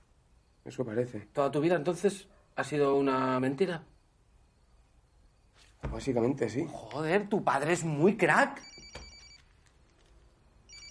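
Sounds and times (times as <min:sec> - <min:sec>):
speech: 0:00.7 - 0:03.9, 0:05.9 - 0:08.8
telephone ringing with electronic trilling: 0:08.6 - 0:10.9.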